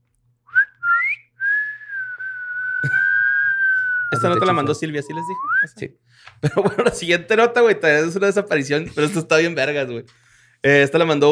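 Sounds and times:
person whistling alone: 0:00.5 - 0:05.9
laughter: 0:02.8 - 0:03.2, 0:06.4 - 0:07.2
speech: 0:04.2 - 0:11.3.

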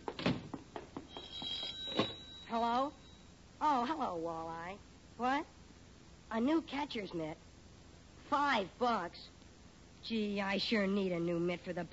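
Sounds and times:
faint steady tone: 0:01.0 - 0:11.9
telephone bell ringing with metallic strikes: 0:01.1 - 0:03.3
speech: 0:02.5 - 0:03.0, 0:03.6 - 0:05.6, 0:06.3 - 0:07.4, 0:08.3 - 0:09.4, 0:10.0 - 0:11.9.

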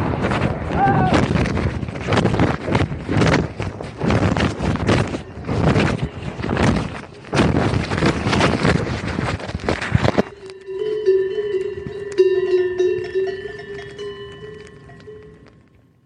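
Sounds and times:
loud rushing rustling noise: 0:00.0 - 0:12.1
cowbells ringing in a meadow: 0:04.9 - 0:07.4, 0:10.1 - 0:15.7.

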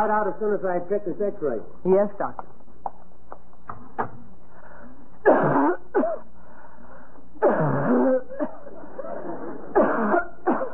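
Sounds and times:
speech: 0:00.0 - 0:02.6
woman coughing from a cold at a doctor's office: 0:05.2 - 0:06.3, 0:07.4 - 0:08.8, 0:09.7 - 0:10.7.

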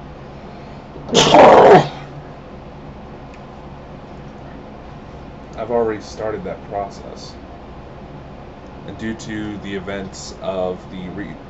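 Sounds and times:
speech: 0:01.1 - 0:01.9, 0:05.7 - 0:07.4, 0:08.9 - 0:11.4
person sneezing: 0:01.1 - 0:02.0.

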